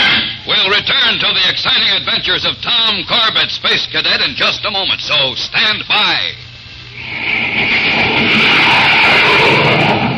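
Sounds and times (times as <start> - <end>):
jet plane roar: 0.0 - 0.7, 6.9 - 10.1
speech: 0.8 - 6.5.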